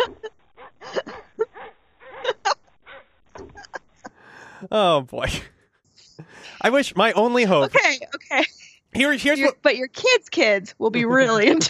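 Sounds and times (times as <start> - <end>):
laughter: 4.4 - 5.4, 6.2 - 9.6, 10.8 - 11.6
speech: 4.6 - 5.6, 6.6 - 11.6
person imitating a tame dog with short yips and whiny barks: 4.7 - 5.4, 6.6 - 7.8, 9.0 - 9.5.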